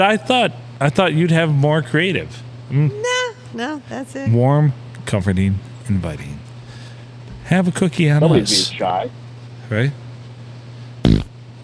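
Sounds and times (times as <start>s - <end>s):
speech: 0.0s - 6.5s, 7.5s - 10.0s
fart: 11.0s - 11.3s.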